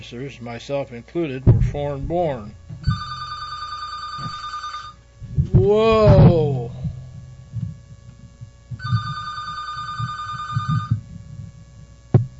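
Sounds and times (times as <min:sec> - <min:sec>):
speech: 0:00.0 - 0:03.0, 0:05.6 - 0:06.8
telephone ringing with bright buzzy ringing: 0:02.8 - 0:05.0, 0:08.8 - 0:11.0.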